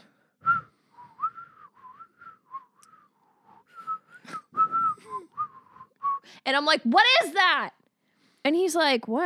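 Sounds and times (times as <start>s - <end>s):
grandfather whistling a made-up tune: 0.4s - 6.3s
speech: 6.5s - 7.8s, 8.5s - 9.2s.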